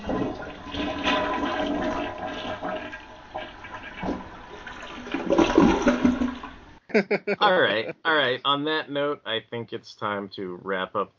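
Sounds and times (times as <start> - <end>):
toilet flushing: 0.0 - 6.8
laughter: 6.9 - 8.2
speech: 7.0 - 11.1.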